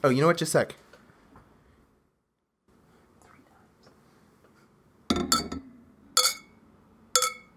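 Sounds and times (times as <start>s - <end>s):
glasses clinking together in a toast: 5.1s - 6.6s, 7.2s - 7.5s.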